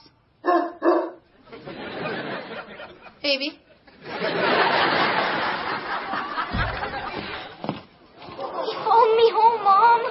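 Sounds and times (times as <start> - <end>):
dog barking: 0.4 - 1.2
laughter: 1.4 - 7.6, 8.2 - 10.0
speech: 3.2 - 4.6.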